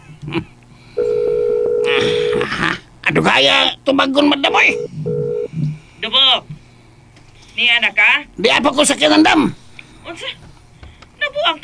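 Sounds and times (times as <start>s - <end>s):
speech: 0.2s - 0.6s, 3.1s - 5.0s, 6.0s - 6.5s, 7.6s - 10.4s, 11.4s - 11.6s
telephone dial tone: 1.0s - 2.4s, 4.5s - 5.7s.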